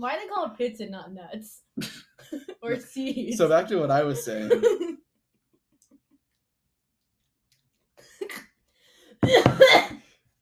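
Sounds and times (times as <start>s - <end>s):
speech: 0.0s - 5.0s
laughter: 2.2s - 5.0s
person coughing harshly: 9.2s - 10.0s.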